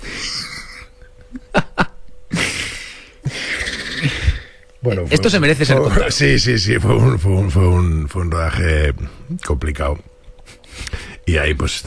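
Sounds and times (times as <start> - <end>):
heavy labored raspy breathing: 0.0 - 1.2, 2.3 - 4.7, 10.4 - 11.3
laughter: 0.2 - 4.5
speech: 4.8 - 10.1, 11.3 - 11.8.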